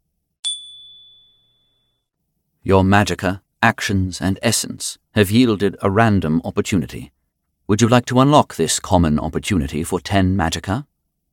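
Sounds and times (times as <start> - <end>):
crystal bell chime: 0.4 - 2.1
speech: 2.6 - 10.9.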